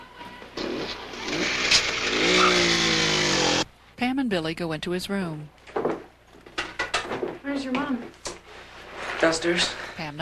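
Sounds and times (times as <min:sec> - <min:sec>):
motor scooter engine starting up and revving: 0:00.6 - 0:03.6
speech: 0:04.3 - 0:05.6, 0:07.6 - 0:08.2, 0:09.2 - 0:10.1.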